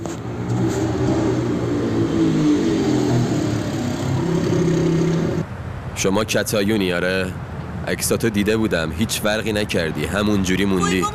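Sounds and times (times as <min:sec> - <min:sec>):
motorcycle engine droning: 0:00.0 - 0:05.5
speech: 0:06.0 - 0:11.1.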